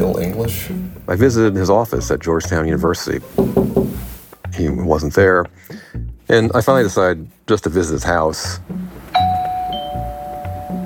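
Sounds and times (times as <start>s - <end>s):
speech: 0.3s - 3.8s, 4.6s - 8.8s
doorbell chime at a front door: 9.2s - 10.8s.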